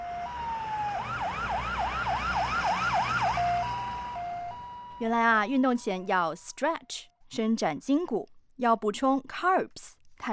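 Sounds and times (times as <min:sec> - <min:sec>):
ambulance siren: 0:00.0 - 0:06.6
speech: 0:05.0 - 0:10.3.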